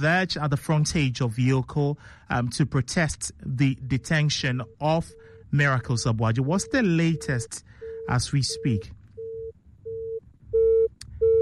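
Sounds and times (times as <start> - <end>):
speech: 0.0 - 9.0
low rumble of noise: 0.0 - 11.4
electronic phone line tone while connecting a call: 3.7 - 11.4.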